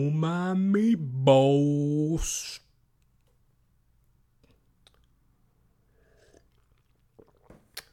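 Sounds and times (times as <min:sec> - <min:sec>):
speech: 0:00.0 - 0:02.6
person sipping water: 0:04.4 - 0:05.2, 0:05.9 - 0:07.9
slurp: 0:06.0 - 0:07.9
swallow: 0:06.0 - 0:07.9.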